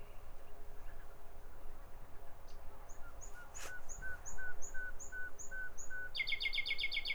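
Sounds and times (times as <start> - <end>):
common nightingale singing: 2.9 - 7.1.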